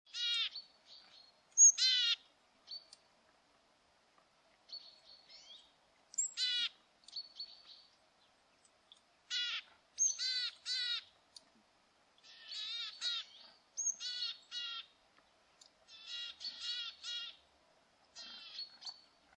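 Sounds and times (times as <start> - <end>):
Parus montanus calling: 0.1 - 2.2, 6.2 - 7.5, 9.3 - 11.1, 12.2 - 14.9, 15.9 - 17.4, 18.2 - 19.0.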